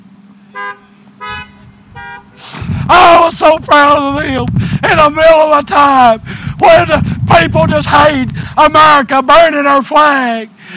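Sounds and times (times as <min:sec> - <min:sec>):
low rumble of road traffic: 0:00.0 - 0:10.7
car horn honks from passing drivers: 0:00.4 - 0:02.4
speech: 0:02.9 - 0:10.7.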